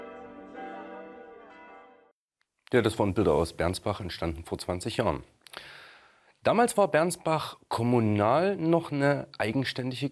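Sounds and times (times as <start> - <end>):
new church bells ringing: 0.0 - 2.1
speech: 2.7 - 5.8, 6.4 - 10.1.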